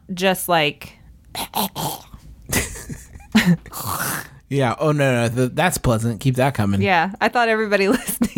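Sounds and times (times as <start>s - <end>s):
speech: 0.1s - 2.7s, 3.4s - 8.3s
person hawking up phlegm with raspy throat-clearing: 1.3s - 4.4s.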